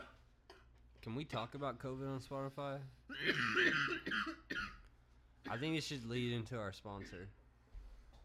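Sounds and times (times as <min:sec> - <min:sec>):
speech: 0:01.0 - 0:04.8, 0:05.4 - 0:07.4
man coughing: 0:03.1 - 0:04.8, 0:07.0 - 0:07.4.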